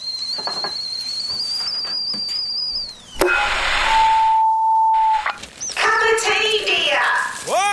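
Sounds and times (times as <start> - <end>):
whistling kettle boiling: 0.0 - 6.5
short electronic beep: 3.1 - 5.4
burst of noise: 3.1 - 5.5.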